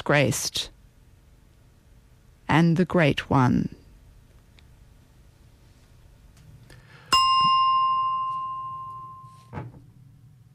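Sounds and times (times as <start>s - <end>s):
speech: 0.1s - 0.7s, 2.5s - 3.8s
bright bell ding with a sustained tone: 7.1s - 9.5s.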